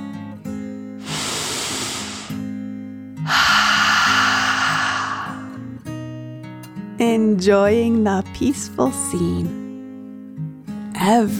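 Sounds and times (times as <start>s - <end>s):
deep breath in and out: 1.0s - 2.5s, 3.3s - 5.7s
speech: 7.0s - 9.6s, 11.0s - 11.3s.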